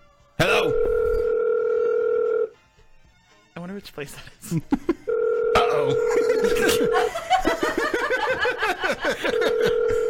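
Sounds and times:
telephone call tone electronic beep: 0:00.7 - 0:02.5, 0:05.1 - 0:06.9, 0:09.4 - 0:10.0
speech: 0:03.8 - 0:05.0, 0:05.8 - 0:07.8
laughter: 0:05.9 - 0:10.0.

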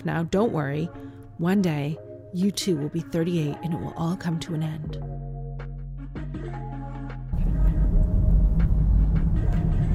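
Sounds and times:
speech: 0:00.0 - 0:05.2
car engine drone inside a moving car: 0:07.4 - 0:09.9
road rumble inside a moving car: 0:07.4 - 0:09.9.

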